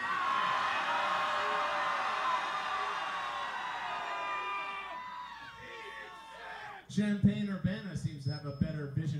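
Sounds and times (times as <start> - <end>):
large concert audience screaming: 0.0 - 6.9
speech: 6.9 - 9.1.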